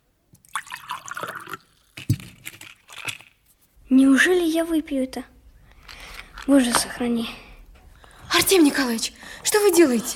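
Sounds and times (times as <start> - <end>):
liquid poured in a splashy trickle: 0.4 - 3.3
speech: 3.9 - 5.3, 6.5 - 7.4, 8.4 - 10.1.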